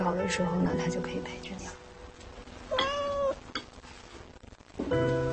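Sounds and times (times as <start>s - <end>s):
speech: 0.2s - 1.8s, 4.8s - 5.2s
kitten meowing: 2.7s - 3.4s.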